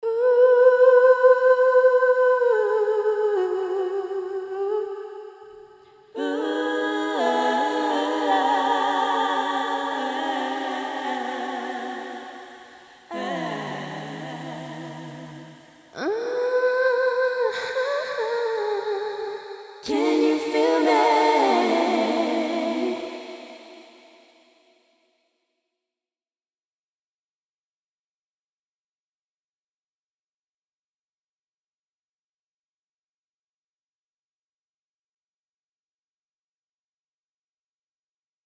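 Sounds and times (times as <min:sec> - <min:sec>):
a cappella vocal wash: 0:00.0 - 0:24.9.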